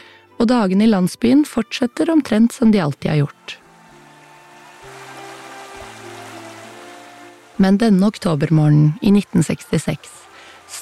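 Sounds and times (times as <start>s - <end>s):
speech: 0.4s - 3.6s, 7.6s - 10.8s
rippling river water: 3.4s - 10.8s.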